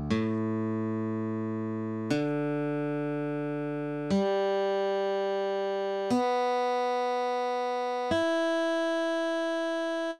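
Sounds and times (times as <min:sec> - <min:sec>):
instrument tuning to drop D: 0:00.1 - 0:10.1.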